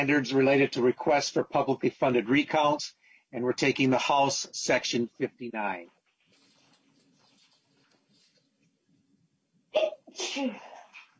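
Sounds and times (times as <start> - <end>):
speech: 0.0 - 6.0, 9.7 - 10.7
forceful human sneeze: 9.8 - 10.9.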